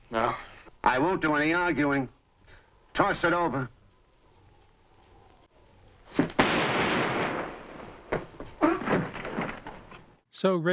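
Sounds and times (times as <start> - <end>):
speech: 1.0 - 2.2, 3.0 - 3.8, 10.4 - 10.7
gunshot in a radio drama: 6.1 - 9.8
thumping bursts: 6.1 - 10.2.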